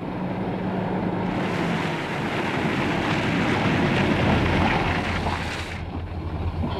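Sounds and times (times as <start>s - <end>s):
car engine rumble as car stops at the roadside: 0.0s - 6.7s
car tires hissing on the road: 1.2s - 5.8s.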